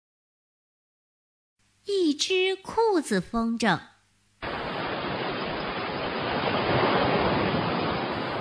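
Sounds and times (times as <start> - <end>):
speech: 1.8 - 3.9
ocean surf at a summer seaside: 4.4 - 8.3.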